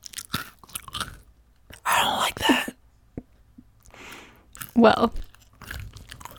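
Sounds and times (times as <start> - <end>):
gum being chewed: 0.0 - 1.9, 3.8 - 6.3
speech: 4.8 - 5.2.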